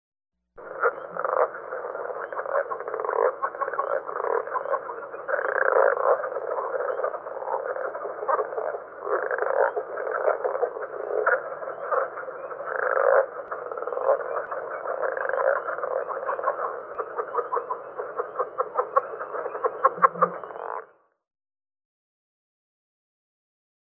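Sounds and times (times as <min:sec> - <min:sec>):
Southern Leopard Frog calling: 0:00.6 - 0:21.0.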